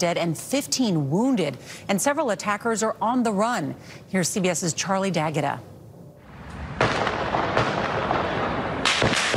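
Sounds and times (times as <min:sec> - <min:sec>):
speech: 0:00.0 - 0:05.8
heavy gunfire on the streets of Vienna during a terror attack: 0:06.6 - 0:09.3.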